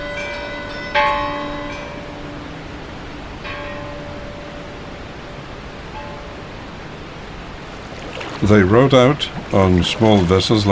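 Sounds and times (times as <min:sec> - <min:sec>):
church bells ringing: 0:00.0 - 0:02.6, 0:03.4 - 0:05.1, 0:05.9 - 0:06.4
speech: 0:08.4 - 0:10.6.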